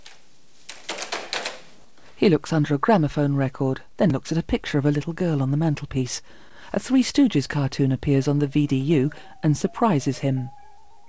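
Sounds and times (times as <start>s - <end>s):
computer keyboard typing in an apartment: 0.0s - 1.6s
speech: 2.2s - 10.6s.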